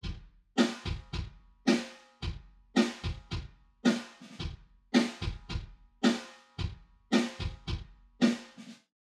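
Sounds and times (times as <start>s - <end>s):
kick drum with reverb: 0.0s - 1.4s, 2.2s - 3.6s, 4.4s - 5.8s, 6.6s - 7.9s
snare drum with reverb: 0.0s - 8.9s.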